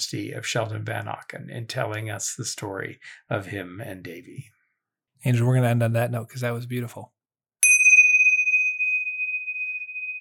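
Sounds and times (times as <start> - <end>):
speech: 0.0 - 4.6, 5.2 - 7.2
bell struck for last call: 7.6 - 10.1.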